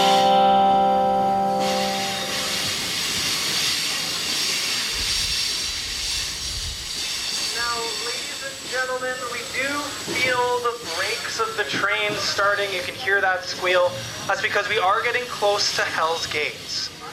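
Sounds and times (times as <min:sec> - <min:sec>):
long sustained train whistle tone: 0:00.0 - 0:02.9
train travelling inland past the Coast Mountain Range: 0:00.0 - 0:17.1
continuous hiss like venting steam: 0:01.5 - 0:17.1
speech: 0:12.4 - 0:16.9.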